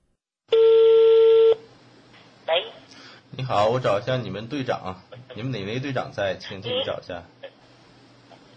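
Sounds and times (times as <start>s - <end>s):
telephone line tone as a call is dialed: 0.5s - 1.6s
speech: 3.4s - 7.4s.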